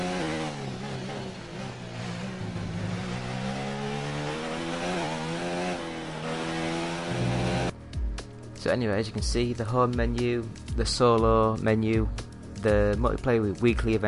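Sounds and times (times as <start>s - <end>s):
racing car engines in a racing video game: 0.0s - 7.8s
speech: 8.6s - 14.0s.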